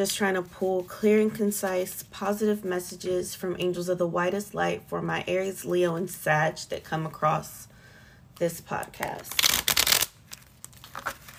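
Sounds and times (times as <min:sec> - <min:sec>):
speech: 0:00.0 - 0:07.7, 0:08.4 - 0:09.7
tarot cards riffling: 0:09.3 - 0:11.3.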